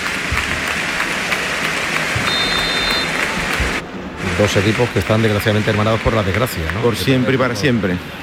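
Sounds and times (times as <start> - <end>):
large stadium crowd applauding: 0.0 - 3.8, 4.5 - 7.5
faint high whistle: 2.3 - 3.1
speech: 4.4 - 8.2.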